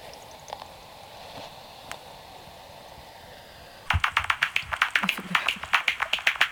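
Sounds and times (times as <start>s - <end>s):
bat echolocation calls made audible as bats fly overhead at dusk: 3.9s - 6.5s.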